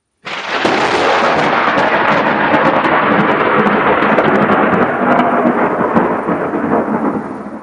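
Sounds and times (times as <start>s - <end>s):
hiss like rain: 0.2s - 7.6s
heavy thunder rumbling over a city: 0.3s - 7.6s.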